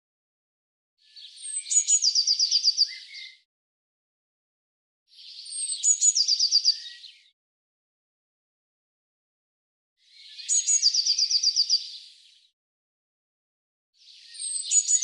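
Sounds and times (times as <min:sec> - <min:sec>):
Eurasian blue tit giving high thin notes and a fast trill: 0:01.1 - 0:03.4, 0:05.2 - 0:07.3, 0:10.1 - 0:12.3, 0:14.1 - 0:15.0.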